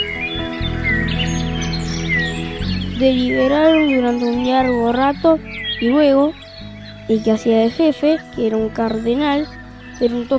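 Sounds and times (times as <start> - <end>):
flock of birds trilling and chirping: 0.0 - 10.3
speech: 3.0 - 6.4, 7.1 - 10.3.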